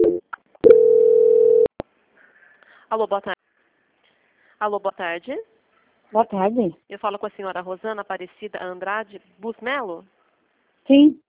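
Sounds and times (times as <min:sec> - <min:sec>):
bank phone line call transfer tone: 0:00.0 - 0:01.7
speech: 0:02.9 - 0:03.5, 0:04.6 - 0:05.5, 0:06.1 - 0:10.2, 0:10.8 - 0:11.2.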